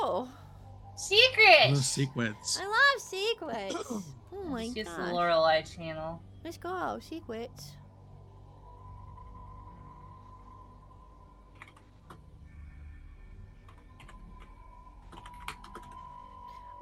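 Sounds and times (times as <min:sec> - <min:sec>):
steady low hum: 0:00.0 - 0:16.8
speech: 0:01.0 - 0:07.8
woman typing a direct message on a computer keyboard: 0:11.6 - 0:11.8, 0:15.1 - 0:16.0.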